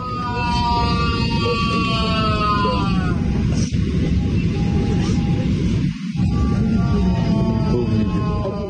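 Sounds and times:
man wailing in pain: 0.0s - 3.2s, 6.4s - 8.6s
constant loud airplane cabin roar: 0.0s - 8.6s.

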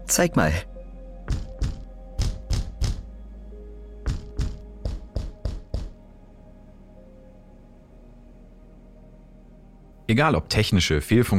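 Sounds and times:
speech: 0.1s - 0.7s, 10.1s - 11.3s
patterned secret knock of dull raps on a wooden surface: 1.3s - 3.1s, 4.1s - 6.0s.

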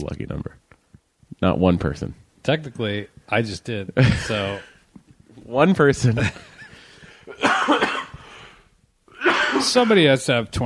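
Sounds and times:
speech: 0.0s - 0.6s, 1.4s - 4.7s, 5.5s - 6.5s, 9.6s - 10.6s
person coughing: 7.3s - 8.2s, 9.2s - 10.0s.

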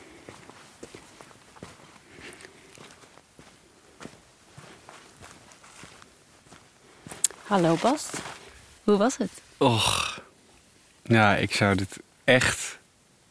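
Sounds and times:
footsteps walking on an outdoor surface: 0.0s - 9.6s
speech: 7.5s - 8.3s, 8.9s - 10.1s, 11.1s - 12.6s.

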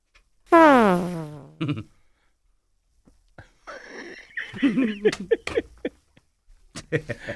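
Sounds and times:
wobbly sputtering squeaky fart noises from a fart box toy: 0.5s - 1.6s
laughter: 3.7s - 6.2s, 6.8s - 7.3s.

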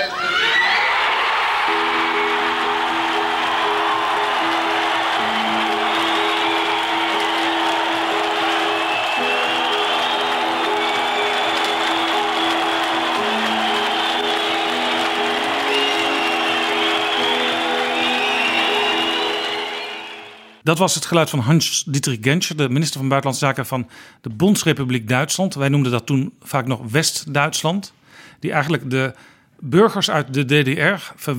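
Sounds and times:
crowd of thousands crying and cheering with emotion: 0.1s - 20.6s
speech: 20.7s - 31.3s.

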